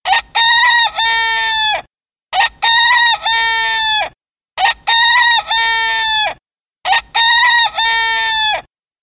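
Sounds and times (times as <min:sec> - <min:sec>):
rooster crowing: 0:00.1 - 0:08.7.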